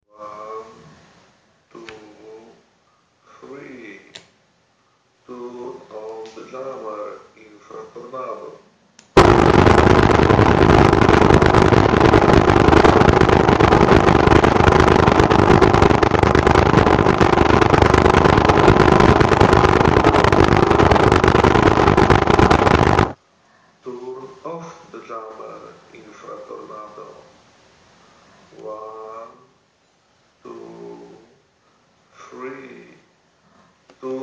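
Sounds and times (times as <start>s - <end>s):
jammer noise: 9.2s - 23.2s.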